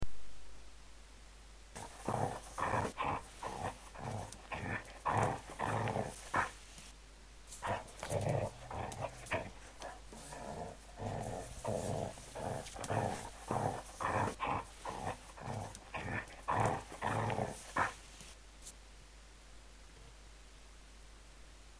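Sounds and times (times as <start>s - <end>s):
playful growl: 1.8s - 6.6s, 7.6s - 18.1s.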